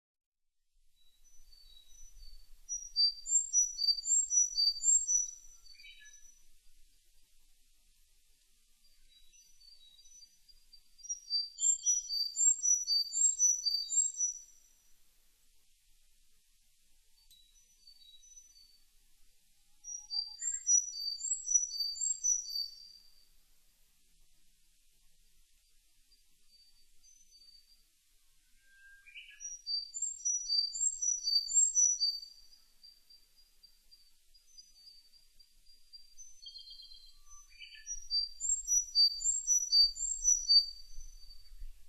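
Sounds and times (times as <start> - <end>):
Sakhalin leaf warbler singing: 1.2 - 6.3, 9.1 - 14.6, 19.9 - 23.1, 28.7 - 41.7.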